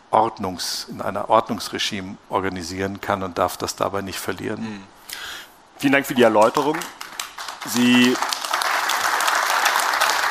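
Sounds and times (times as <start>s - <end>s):
speech: 0.1s - 5.0s, 5.8s - 7.0s, 7.6s - 8.3s
audience applause: 6.4s - 10.3s.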